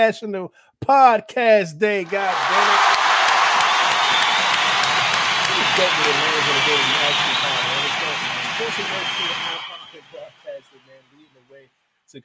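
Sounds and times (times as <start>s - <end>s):
speech: 0.0s - 3.0s, 5.8s - 7.5s, 8.6s - 9.5s
crowd cheering and whooping: 2.0s - 10.4s
loud sustained round of applause: 2.0s - 10.8s.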